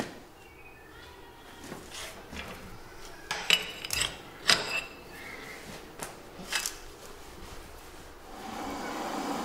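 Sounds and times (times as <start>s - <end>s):
steady low hum: 0.0s - 9.0s
steel rods being bent with a hand lever, metallic clanks and scrapes: 3.3s - 5.0s.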